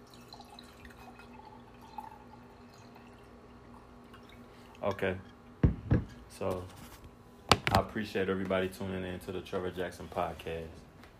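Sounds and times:
liquid being poured into a glass: 0.0s - 5.6s
low steady hum: 0.0s - 11.1s
speech: 4.8s - 5.3s, 6.4s - 6.8s, 7.9s - 10.8s.

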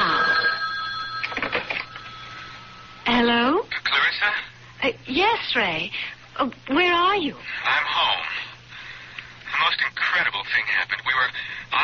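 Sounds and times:
telephone bell ringing: 0.0s - 3.3s
faint steady electronic hum: 0.0s - 11.8s
speech: 4.8s - 8.2s, 10.1s - 11.8s.

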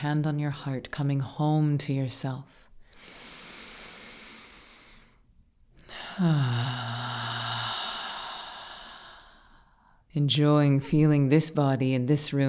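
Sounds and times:
speech: 0.0s - 3.2s, 6.2s - 7.0s, 10.1s - 12.4s
deep breath in and out during a guided grounding meditation: 2.8s - 10.1s
low voiced sigh: 5.8s - 9.8s.

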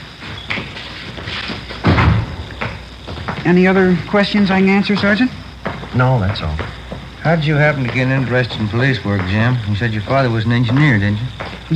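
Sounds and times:
heavy door thudding shut: 1.8s - 3.4s
speech: 3.4s - 11.7s.

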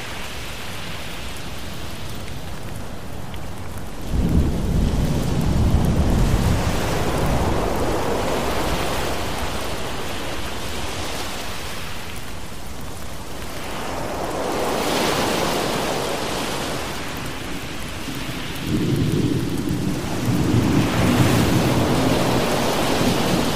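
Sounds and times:
steady rain hissing in a thunderstorm: 0.0s - 23.5s
deep rolling thunder: 4.0s - 10.0s, 18.1s - 23.5s.

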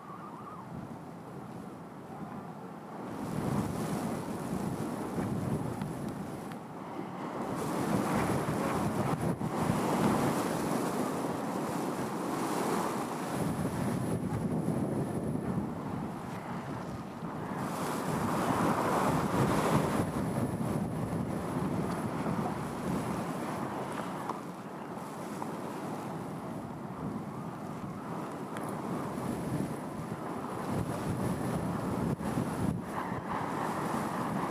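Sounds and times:
faint high whistle: 0.0s - 0.7s
wind buffeting against the microphone: 0.0s - 34.4s.

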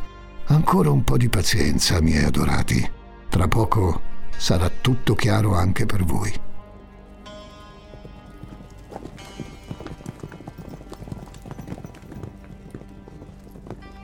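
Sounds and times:
sustained musical backdrop: 0.0s - 14.0s
speech: 0.6s - 6.4s
horse hooves clip-clopping while riding: 6.7s - 14.0s.

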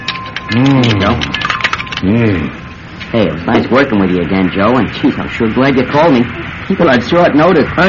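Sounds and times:
keys jangling while handcuffs are unlocked: 0.0s - 2.1s
speech: 0.5s - 1.4s, 2.0s - 7.8s.

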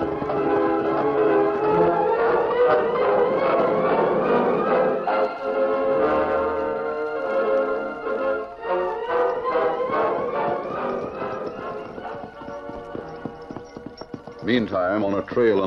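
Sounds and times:
horse hooves clip-clopping as a rider rides away: 0.0s - 5.4s, 6.8s - 15.6s
orchestral score: 0.0s - 13.5s, 14.3s - 15.6s
speech: 14.6s - 15.6s.

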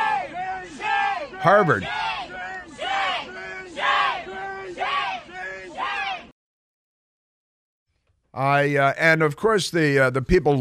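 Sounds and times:
crowd chanting shame at a man walking across Harvard Yard: 0.0s - 6.3s
speech: 1.4s - 2.0s, 8.4s - 10.5s.

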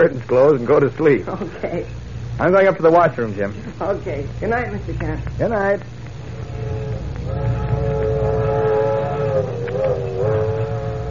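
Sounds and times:
speech: 0.0s - 6.0s
passenger sleeper train rumbling along the rails: 6.2s - 11.0s
wavering tonal drone of a passenger sleeper train: 6.2s - 11.0s.

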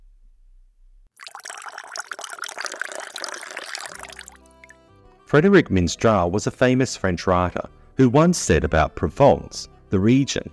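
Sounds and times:
vinaigrette being poured over salad: 1.2s - 4.8s
speech: 5.3s - 10.5s.

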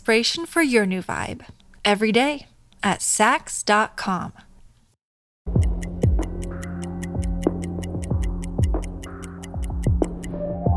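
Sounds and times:
speech: 0.1s - 4.5s
low resonant throbbing tones: 5.5s - 10.3s
clock ticking: 5.5s - 10.4s.

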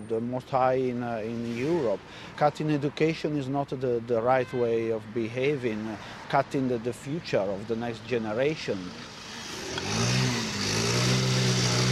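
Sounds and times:
speech: 0.1s - 9.1s
scooter engine revving at a repair business: 8.9s - 11.8s.

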